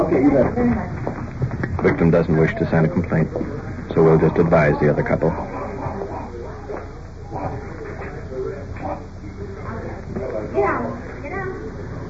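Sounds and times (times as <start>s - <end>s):
voices: 0.0s - 12.0s
speech: 0.1s - 1.1s, 1.8s - 5.6s
two Great Dane dogs barking: 5.2s - 7.7s.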